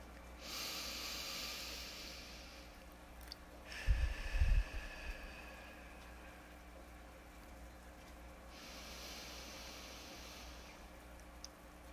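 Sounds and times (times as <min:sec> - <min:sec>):
slow deep breathing, inhale and exhale: 0:00.4 - 0:02.8, 0:03.7 - 0:06.7, 0:08.5 - 0:10.9.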